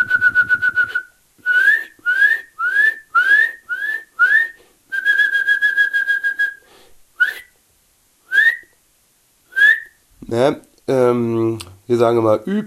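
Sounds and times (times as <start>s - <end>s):
Eurasian nuthatch singing upslurred whistles: 0.0s - 6.6s, 7.2s - 7.5s, 8.3s - 8.7s, 9.5s - 10.0s
speech: 10.3s - 12.6s.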